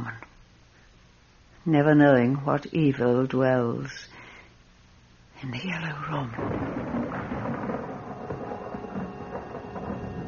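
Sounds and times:
continuous hiss: 0.0 - 10.2
speech: 1.6 - 4.2, 5.4 - 7.3
distant thunder rumbling: 6.3 - 10.2.

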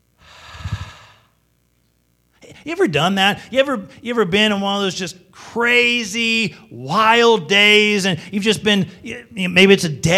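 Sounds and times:
group of people breathing out deeply together: 0.2 - 1.3
speech: 2.6 - 10.1.

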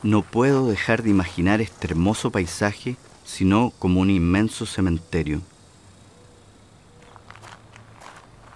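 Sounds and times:
footsteps of people walking across desert ground: 0.0 - 3.3, 7.0 - 8.5
speech: 0.0 - 5.5
steady hissy noise: 0.0 - 8.5.

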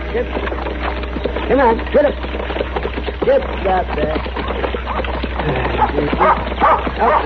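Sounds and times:
speech: 0.1 - 0.7, 1.5 - 2.6, 3.2 - 7.2
dog barking and yipping in short excited bursts: 4.4 - 7.2.

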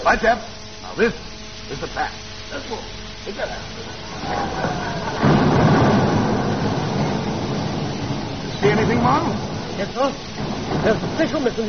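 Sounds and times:
speech: 0.0 - 5.3, 8.6 - 11.6
rockets and bombs exploding in wartime as a continuous rumbling roar: 3.9 - 11.6.

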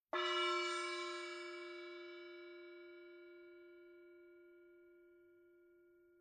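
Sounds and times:
medium seven-inch gong: 0.1 - 6.1.

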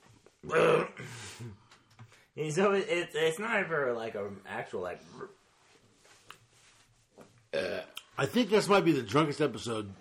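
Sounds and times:
loud throaty burp: 0.4 - 1.1, 7.6 - 7.9
speech: 0.5 - 1.6, 2.4 - 5.4, 7.6 - 10.0.

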